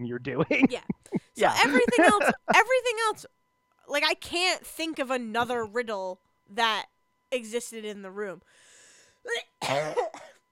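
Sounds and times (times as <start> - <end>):
speech: 0.0 - 8.6, 9.2 - 10.3
faint hiss: 0.1 - 9.2
laughter: 0.3 - 2.6
rough raspy coughing: 0.4 - 2.6, 9.6 - 10.4.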